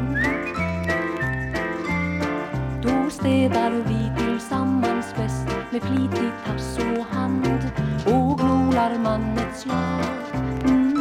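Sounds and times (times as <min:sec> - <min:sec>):
person whistling a bright tune: 0:00.0 - 0:02.5
musical accompaniment with low notes in a steady bouncing rhythm: 0:00.0 - 0:10.9
speech: 0:03.2 - 0:10.8.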